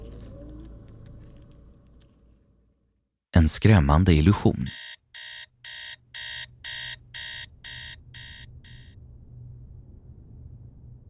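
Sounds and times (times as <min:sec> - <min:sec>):
speech: 0:03.4 - 0:05.0
alarm clock beeping: 0:04.6 - 0:09.0.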